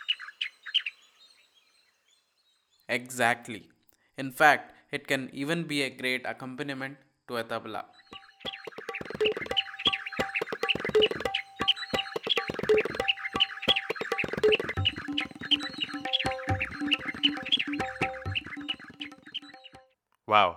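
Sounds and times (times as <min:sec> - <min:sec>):
speech: 0:02.9 - 0:08.0, 0:20.3 - 0:20.5
white-browed bulbul singing chattering warbles: 0:07.9 - 0:19.8.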